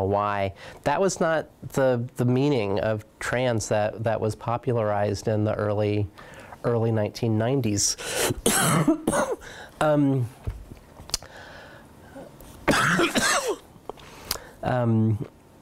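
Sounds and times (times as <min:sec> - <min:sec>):
speech: 0:00.0 - 0:10.4, 0:14.6 - 0:15.4
quiet breaths: 0:00.5 - 0:00.9, 0:06.1 - 0:06.7, 0:09.4 - 0:09.8, 0:11.2 - 0:12.6, 0:13.9 - 0:14.6
person coughing: 0:08.2 - 0:09.5, 0:12.7 - 0:13.6.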